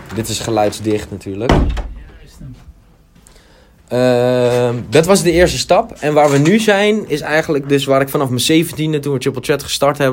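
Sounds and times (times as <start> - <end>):
speech: 0.1 - 2.7, 3.9 - 10.1
door shutting with a solid thud and rattle: 1.4 - 2.2
door scraping or creaking as it settles into the frame: 1.5 - 2.2.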